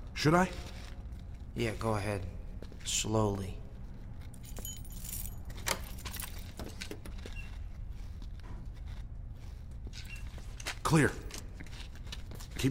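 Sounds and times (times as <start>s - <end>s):
speech: 0.2s - 0.7s, 1.6s - 3.6s, 10.9s - 11.3s
keys jangling and clinking against a door lock: 4.2s - 7.3s.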